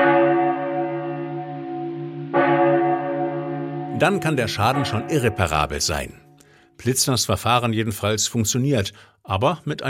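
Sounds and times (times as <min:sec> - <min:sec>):
cracked church bell struck by hand ringing: 0:00.0 - 0:06.4
speech: 0:04.0 - 0:06.2, 0:06.8 - 0:09.8.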